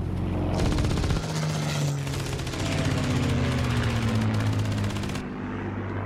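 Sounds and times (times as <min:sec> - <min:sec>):
German plane and Soviet fighter plane engines droning while banking in pursuit: 0:00.0 - 0:06.0
rattling bursts like gunfire: 0:00.6 - 0:05.3.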